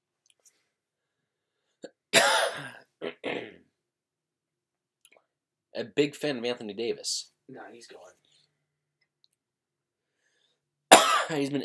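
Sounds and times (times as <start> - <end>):
man coughing: 1.8 - 3.7, 10.9 - 11.4
speech: 5.8 - 8.3, 11.3 - 11.6.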